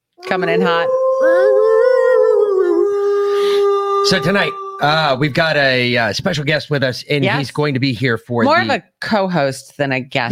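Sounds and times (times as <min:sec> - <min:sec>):
wolf howling: 0:00.2 - 0:05.5
speech: 0:00.3 - 0:01.9, 0:04.0 - 0:10.3.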